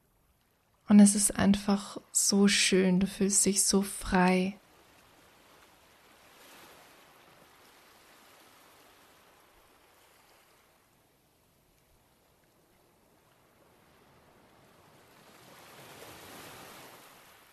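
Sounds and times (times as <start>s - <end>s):
speech: 0.9s - 4.6s
water waves breaking against a ship's hull in Milford Sound: 4.8s - 11.0s, 13.8s - 17.5s.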